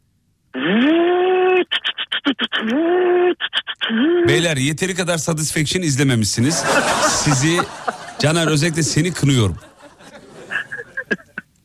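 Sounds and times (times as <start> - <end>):
person vocally imitating a hammer drill: 0.6 - 4.4
speech: 2.6 - 3.2, 3.9 - 9.7
laughter: 6.4 - 11.4.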